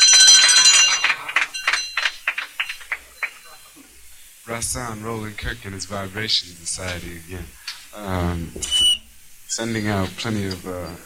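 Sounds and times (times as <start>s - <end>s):
bell ringing: 0.0s - 3.8s
speech: 4.5s - 8.9s, 9.5s - 11.0s.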